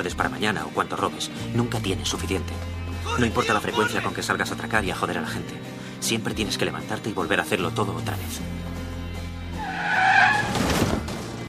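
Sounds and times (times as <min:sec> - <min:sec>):
speech: 0:00.0 - 0:08.7
car tires screeching in a skid: 0:09.5 - 0:11.0
car crash impact: 0:10.3 - 0:11.4.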